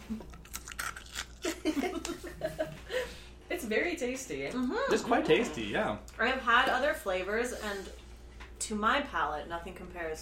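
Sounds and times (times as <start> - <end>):
speech: 0.1 - 0.4, 3.7 - 8.0, 8.6 - 10.2
person chewing a crunchy cheese-flavoured corn snack: 0.1 - 1.6.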